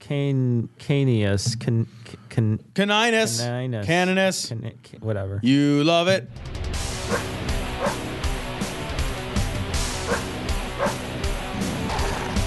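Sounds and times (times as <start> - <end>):
speech: 0.1 - 7.4
dense distorted heavy metal music: 6.4 - 12.4
pit bull barking and growling: 7.0 - 8.1, 10.0 - 11.1, 11.7 - 12.4.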